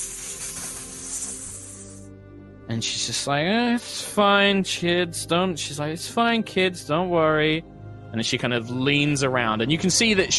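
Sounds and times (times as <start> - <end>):
voice imitating gentle snake hiss: 0.0 - 2.1
speech: 2.7 - 10.3.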